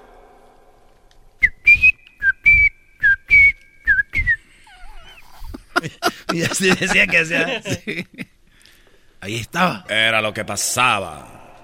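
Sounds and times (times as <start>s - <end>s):
person whistling chirpy bird-like notes and warbling trills: 1.4s - 4.4s
laughter: 4.7s - 8.2s
speech: 5.8s - 8.3s, 9.3s - 11.4s.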